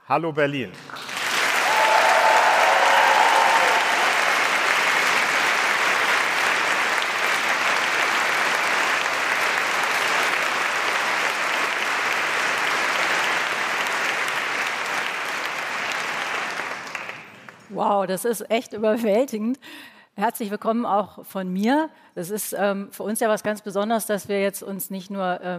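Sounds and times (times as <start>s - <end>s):
speech: 0.1s - 1.1s, 17.8s - 25.5s
audience of 700 to 800 people clapping in a large hall: 0.7s - 17.8s.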